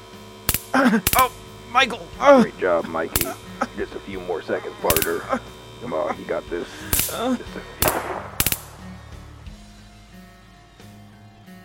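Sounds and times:
low hum: 0.0 - 11.4
laughter: 0.7 - 8.9
speech: 0.8 - 8.4
gunshots: 3.1 - 4.0, 4.8 - 5.3, 6.8 - 9.5.

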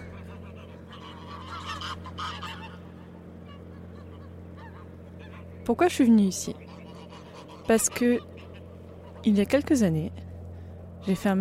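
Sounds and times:
flock of geese scared into flight honking at Mortagne-du-Nord in northern France: 0.0 - 11.4
steady low rumble: 0.0 - 11.4
speech: 5.6 - 6.7, 7.7 - 8.3, 9.2 - 10.2, 11.0 - 11.4.

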